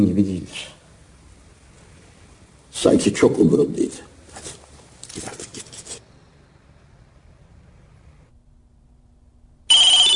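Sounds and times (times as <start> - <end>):
speech: 0.0 - 0.8, 2.8 - 4.6, 5.2 - 5.5
telephone ringing with electronic trill: 9.7 - 10.1.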